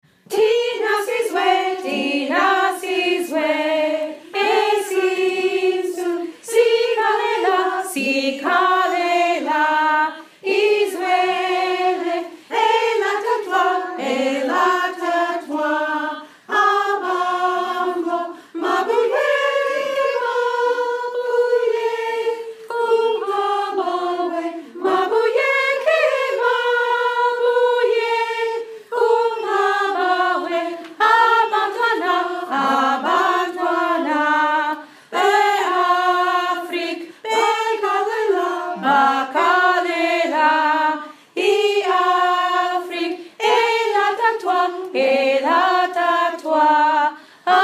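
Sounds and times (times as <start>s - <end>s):
alto voices singing: 0.0s - 47.6s.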